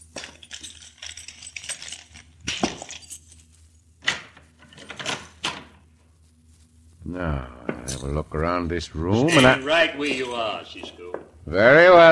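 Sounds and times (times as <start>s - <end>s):
keys jingling and clinking: 0.0s - 3.5s
speech: 7.1s - 12.1s.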